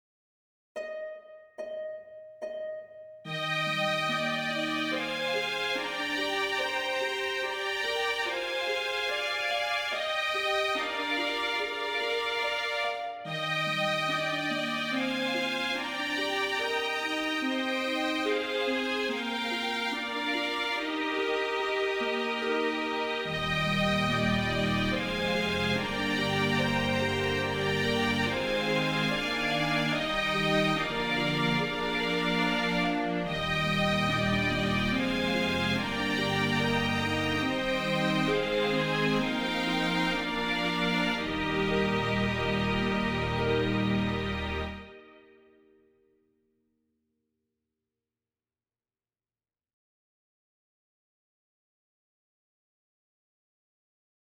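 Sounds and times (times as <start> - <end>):
chorale tune: 0.8 - 45.5.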